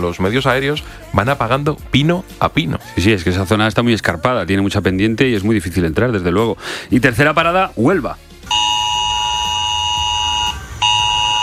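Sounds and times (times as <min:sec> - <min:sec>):
speech: 0:00.0 - 0:08.6
harsh mobile phone emergency alert tone on residents' phones in Villanueva de las Cruces, Huelva: 0:08.5 - 0:11.4.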